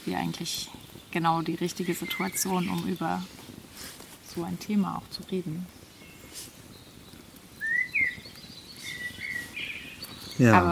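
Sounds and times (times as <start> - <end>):
steady low crackling background: 0.0 - 10.7
birds chirping and trilling outdoors: 0.1 - 3.3, 5.9 - 10.7
speech: 0.1 - 3.5, 4.4 - 5.8, 10.4 - 10.7.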